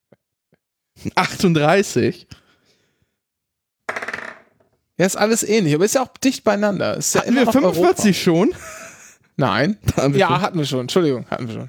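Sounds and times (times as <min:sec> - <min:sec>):
speech: 0:01.0 - 0:02.4, 0:05.0 - 0:08.8, 0:09.4 - 0:11.6
dice clattering onto a hard table: 0:03.9 - 0:04.7
laughter: 0:07.1 - 0:09.2.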